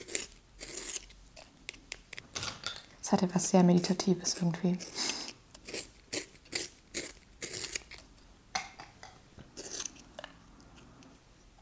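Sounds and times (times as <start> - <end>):
colored pencils being sharpened: 0.0 - 1.5, 3.7 - 8.0, 9.6 - 10.0
speech: 3.1 - 5.1.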